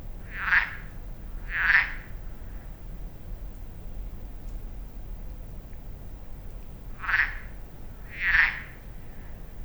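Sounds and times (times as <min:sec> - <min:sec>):
frog croaking at a lake in Magnieu, France, echoing off hills: 0:00.2 - 0:02.8, 0:06.9 - 0:09.5.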